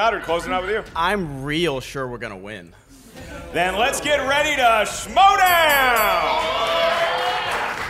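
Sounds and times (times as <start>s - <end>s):
speech: 0.0s - 6.8s
crowd cheering and applauding: 5.4s - 7.8s.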